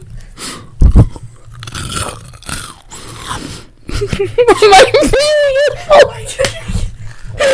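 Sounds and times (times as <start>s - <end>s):
crunchy chewing recorded as ASMR: 0.0s - 3.7s
breathy voices: 0.0s - 4.1s, 5.7s - 7.5s
people laughing: 3.9s - 7.5s.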